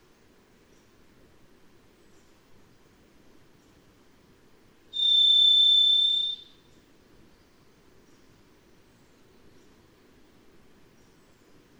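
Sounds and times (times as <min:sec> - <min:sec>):
varied thrush whistled song note: 0:05.0 - 0:06.6.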